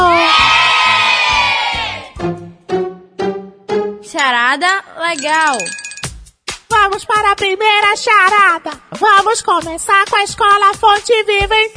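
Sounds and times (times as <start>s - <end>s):
crowd of school supporters, mostly children, cheering and shouting in a studio: 0.0s - 2.2s
speech: 4.5s - 5.8s, 6.7s - 11.7s.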